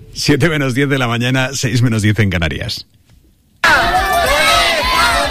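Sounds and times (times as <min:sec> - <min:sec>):
speech: 0:00.2 - 0:03.0
crowd of parents shouting a protest chant: 0:03.6 - 0:05.2.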